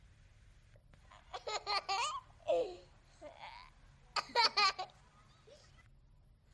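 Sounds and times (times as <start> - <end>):
low hum: 0.0 - 6.5
played recording of a baby laughing: 1.2 - 5.8.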